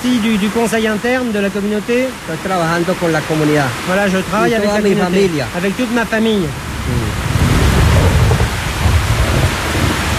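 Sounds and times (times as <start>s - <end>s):
speech: 0.0s - 7.3s
heavy rain at night: 0.0s - 10.1s
thunder rumbling: 6.5s - 10.1s.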